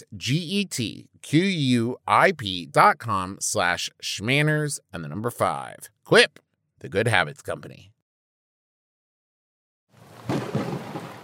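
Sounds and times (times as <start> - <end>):
speech: 0.0 - 7.9
rumbling thunder in a thunderstorm: 10.2 - 11.2.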